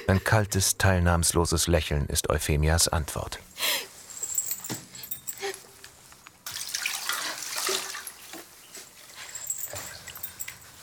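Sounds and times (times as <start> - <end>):
speech: 0.1 - 3.5
water splashing and sloshing as a woman is washed: 6.5 - 8.6.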